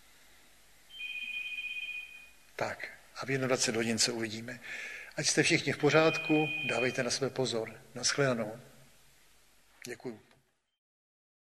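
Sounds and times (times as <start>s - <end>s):
telephone ringing with a high-pitched electronic tone: 1.0s - 2.3s, 5.9s - 7.2s
speech: 2.6s - 8.7s, 9.8s - 10.3s.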